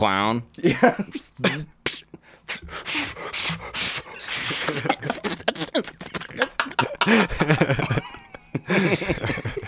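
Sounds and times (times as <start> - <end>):
speech: 0.0 - 8.2, 8.8 - 9.4
vocal imitation of blowing up a balloon with breathy puffs: 1.9 - 7.0
person chuckling: 4.4 - 9.6.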